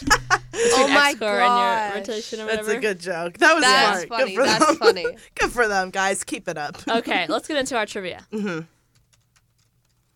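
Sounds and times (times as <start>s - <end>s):
speech: 0.7s - 8.8s
typing on a computer keyboard: 8.9s - 10.1s.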